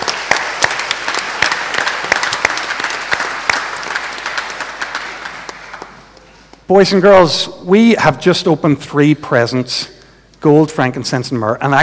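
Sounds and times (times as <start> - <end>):
audience clapping: 0.0 - 6.7
speech: 6.7 - 11.8.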